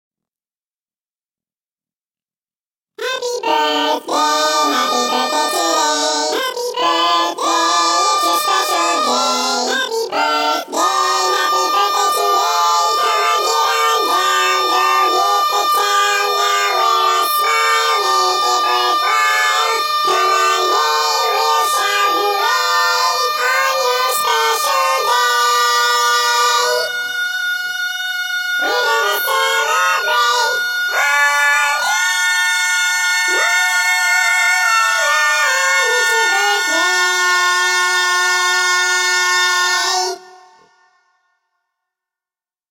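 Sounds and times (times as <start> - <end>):
chipmunk-style sped-up voices singing a birthday song in English: 3.0 - 40.9.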